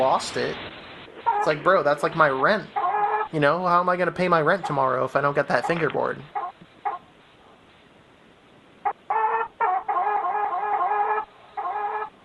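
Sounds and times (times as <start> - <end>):
speech: 0.0 - 6.4
chicken clucking: 2.6 - 3.4, 4.5 - 7.6, 8.8 - 12.2.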